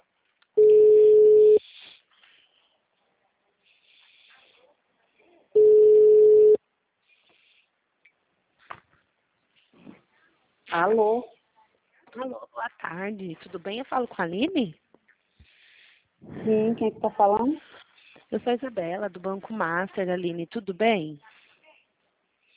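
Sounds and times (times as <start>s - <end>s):
ringback tone of an outgoing phone call: 0.6s - 1.6s, 5.6s - 6.6s
speech: 10.7s - 11.4s, 12.2s - 14.8s, 16.4s - 17.6s, 18.3s - 21.3s.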